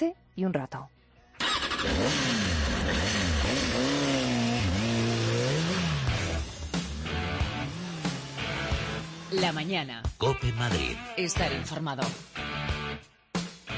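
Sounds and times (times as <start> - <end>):
speech: 0.0 - 1.0, 1.8 - 3.9, 9.3 - 12.3
motorcycle engine revving and idling roughly: 1.4 - 9.9.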